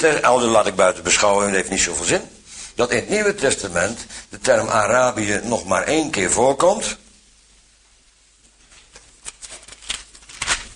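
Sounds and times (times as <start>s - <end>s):
speech: 0.0s - 7.0s
book page turning: 8.6s - 10.7s.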